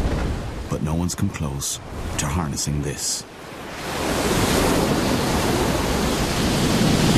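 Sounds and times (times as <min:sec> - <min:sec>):
stormy waves pounding the shore: 0:00.0 - 0:07.1
speech: 0:00.7 - 0:04.0.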